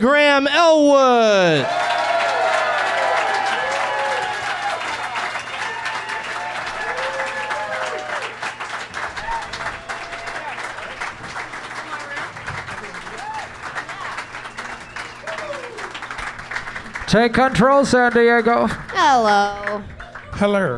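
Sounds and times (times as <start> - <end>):
speech: 0.0 - 1.8, 17.2 - 20.7
crowd cheers and whoops: 1.4 - 8.4, 9.0 - 10.7, 13.1 - 16.0
San Diego crowd applauding: 1.4 - 20.7.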